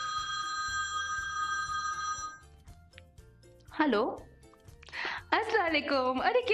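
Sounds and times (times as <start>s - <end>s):
mobile phone ringing: 0.0s - 2.6s
speech: 3.8s - 4.3s, 5.0s - 6.5s.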